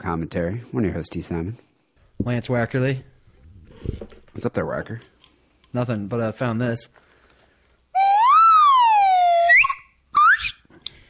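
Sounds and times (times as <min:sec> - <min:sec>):
speech: 0:00.0 - 0:03.1, 0:03.8 - 0:07.0
slide whistle being played: 0:08.0 - 0:10.6.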